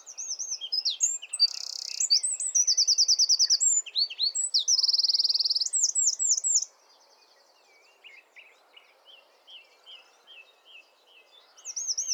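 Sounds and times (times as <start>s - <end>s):
Eurasian wren Troglodytes troglodytes song: 0.1s - 6.7s, 11.6s - 12.1s.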